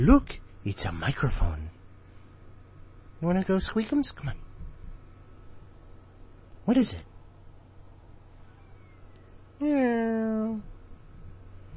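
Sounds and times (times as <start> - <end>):
speech: 0.0 - 1.8, 3.2 - 4.4, 6.7 - 7.1, 9.6 - 10.7
cat meowing: 8.4 - 10.4.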